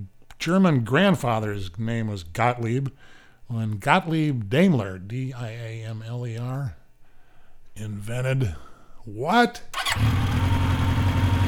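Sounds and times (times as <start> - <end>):
speech: 0.4 - 6.8, 7.8 - 10.4
motorcycle engine idling: 9.8 - 11.4.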